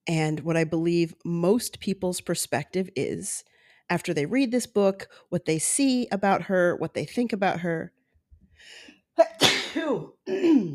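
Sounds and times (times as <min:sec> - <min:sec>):
speech: 0:00.1 - 0:08.0, 0:08.6 - 0:10.7
person sneezing: 0:09.4 - 0:10.7.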